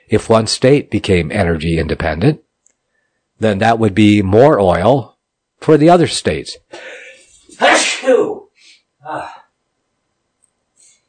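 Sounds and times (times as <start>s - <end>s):
speech: 0.1s - 2.4s, 3.4s - 7.0s, 7.6s - 8.4s, 9.0s - 9.4s
quiet exhale or sniff: 6.7s - 7.3s
person sneezing: 6.8s - 9.5s.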